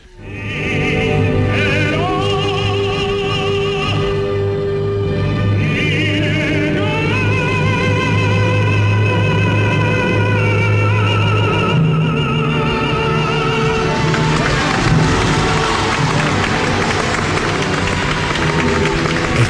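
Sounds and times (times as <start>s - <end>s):
sustained operatic music with orchestra: 0.0s - 19.4s
large opera audience applauding in an ovation: 13.1s - 19.4s.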